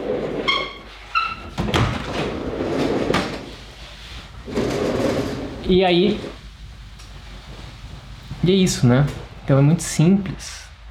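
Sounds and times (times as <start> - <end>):
double-framed sliding balcony door opening and closing: 0.0 - 8.4
sliding balcony door thin squeak: 0.5 - 1.5
speech: 5.7 - 6.3, 8.4 - 10.6.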